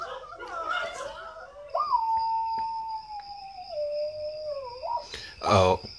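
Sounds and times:
people laughing: 0.0 - 1.9
person imitating dog howl: 0.0 - 5.6
speech: 5.4 - 5.9.

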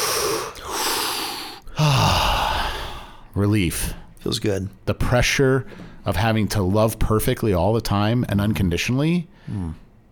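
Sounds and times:
deep breath taken slowly: 0.0 - 3.3
speech: 3.4 - 9.8.

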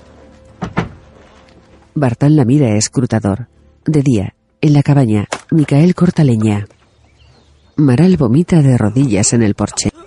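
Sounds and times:
door hastily closed with thuds: 0.6 - 1.0
speech: 2.0 - 6.8, 7.8 - 9.9.

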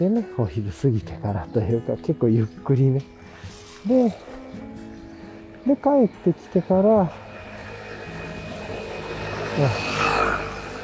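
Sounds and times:
speech: 0.0 - 4.7, 5.6 - 7.3, 9.6 - 10.0
steady outdoor noise: 0.0 - 10.8
loud motorcycle passing by: 3.4 - 10.8.

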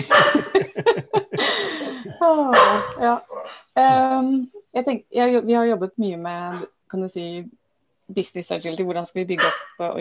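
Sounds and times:
dog barking: 0.0 - 0.5, 2.5 - 3.6, 9.4 - 9.8
laughter: 0.0 - 3.2
speech: 2.2 - 10.0.

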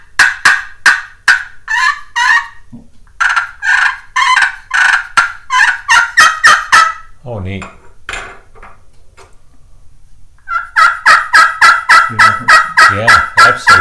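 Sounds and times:
raspy turkey yelps from a friction pot call played with a striker: 0.2 - 2.6, 3.2 - 7.2, 10.4 - 13.7
speech: 7.4 - 7.8.

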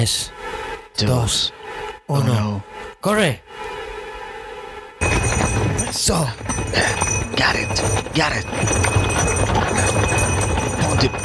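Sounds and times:
speech: 0.0 - 0.4, 1.0 - 3.7, 5.9 - 9.2
horse hooves clip-clopping at a walking pace: 5.0 - 11.2.

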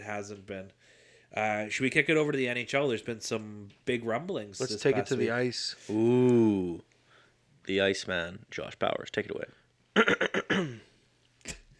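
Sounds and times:
speech: 0.1 - 6.9, 7.6 - 10.8
person clearing throat: 10.0 - 11.6.

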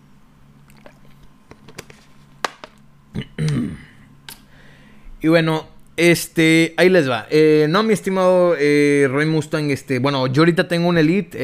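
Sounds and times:
person taking a small sip of water: 0.6 - 1.4
soft clicks and small wet mouth sounds: 0.7 - 1.3
speech: 5.2 - 11.4.

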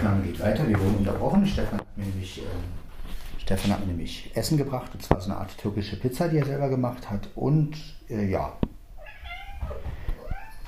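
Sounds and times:
speech: 0.2 - 8.7, 9.7 - 10.0
tomcat meowing: 9.0 - 10.6.

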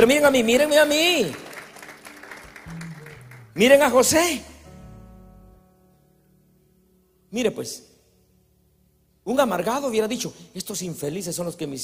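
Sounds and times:
speech: 0.0 - 1.5, 3.6 - 4.5, 7.3 - 7.9, 9.3 - 11.8
audience applauding: 0.0 - 4.1
faint low voice murmuring: 2.7 - 3.5.

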